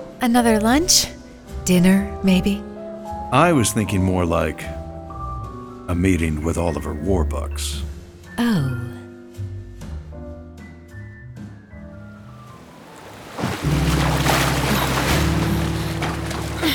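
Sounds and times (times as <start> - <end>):
soft melodic music: 0.0 - 16.7
speech: 0.2 - 2.7, 3.3 - 4.8, 5.9 - 8.9
surf and waves rushing on ocean water: 12.3 - 16.7.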